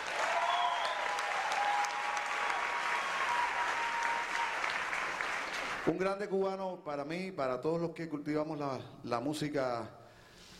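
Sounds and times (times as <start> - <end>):
applause from a sizable audience: 0.0 - 5.9
faint whistles: 0.4 - 1.2
speech: 5.8 - 10.0.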